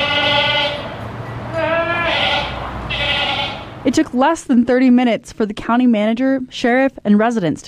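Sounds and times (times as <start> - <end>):
goats bleating: 0.0 - 3.8
speech: 3.8 - 7.6.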